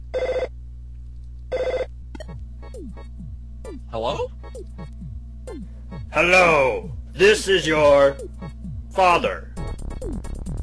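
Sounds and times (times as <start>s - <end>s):
steady low hum: 0.0s - 10.6s
telephone ringing: 0.2s - 0.5s, 1.5s - 1.9s
speech: 3.9s - 4.9s, 6.1s - 8.2s, 9.0s - 9.5s.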